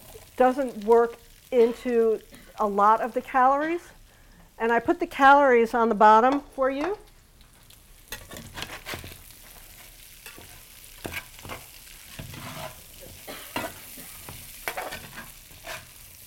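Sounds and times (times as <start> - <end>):
peppers and celery sizzling in oil in a hot pan: 0.0 - 16.2
speech: 0.4 - 4.0, 4.6 - 7.0
scraping and clattering as vegetables are stirred and tossed: 8.1 - 16.1.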